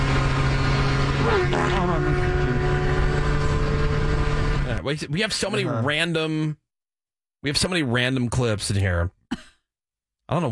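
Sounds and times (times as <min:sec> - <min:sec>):
extremely fast motorcycle passing by at high speed: 0:00.0 - 0:04.8
speech: 0:01.3 - 0:02.3, 0:04.9 - 0:06.6, 0:07.4 - 0:09.5, 0:10.3 - 0:10.5.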